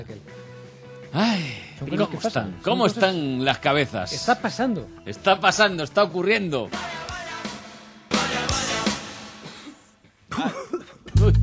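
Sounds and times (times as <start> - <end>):
speech: 1.1 - 6.9
person coughing harshly: 9.4 - 11.3.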